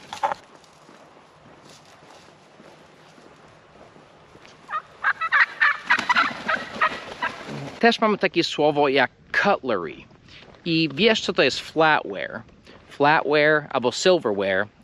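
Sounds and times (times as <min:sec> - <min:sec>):
wild turkeys gobbling: 0:00.0 - 0:00.4, 0:04.4 - 0:07.8
scattered calls: 0:04.5 - 0:07.8
speech: 0:07.8 - 0:14.8.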